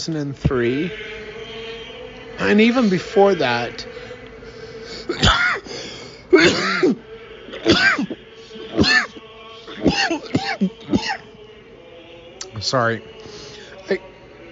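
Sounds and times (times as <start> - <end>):
speech: 0.0 - 1.2, 2.4 - 3.9, 6.4 - 7.0, 12.6 - 13.2, 13.9 - 14.1
harsh raspy coughing fit: 5.1 - 7.0, 7.6 - 11.3.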